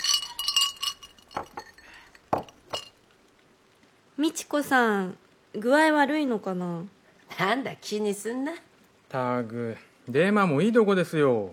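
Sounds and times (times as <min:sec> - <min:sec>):
glasses clinking in a toast: 0:00.0 - 0:03.0
speech: 0:04.2 - 0:11.5.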